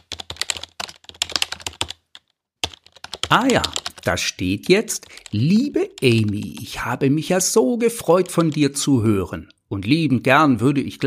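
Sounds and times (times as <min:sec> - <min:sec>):
rapid keyboard typing of a written reply: 0:00.0 - 0:06.9, 0:07.8 - 0:09.6
speech: 0:03.3 - 0:11.0.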